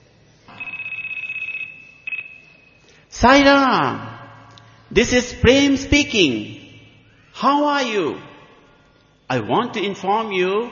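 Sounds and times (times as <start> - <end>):
cell phone ringing with electronic trill: 0.5 - 2.8
speech: 3.2 - 4.1, 4.9 - 6.6, 7.4 - 8.3, 9.3 - 10.7.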